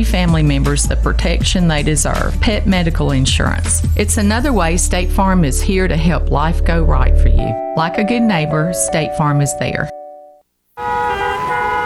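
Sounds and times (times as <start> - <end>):
speech: 0.0 - 10.0
car horns honking in traffic: 10.8 - 11.8.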